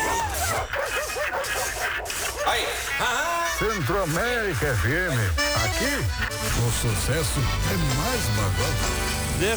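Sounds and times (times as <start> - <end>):
dog barking in short arching yelps: 0.0 - 3.4
speech: 3.0 - 9.5.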